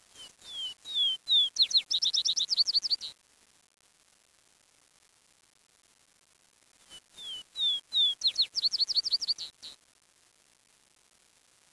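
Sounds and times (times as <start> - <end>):
bird singing whistles and chirps: 0.2 - 3.1, 7.2 - 9.6.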